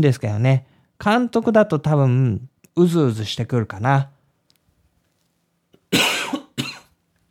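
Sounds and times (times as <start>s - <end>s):
speech: 0.0s - 4.2s
person coughing: 5.9s - 7.0s.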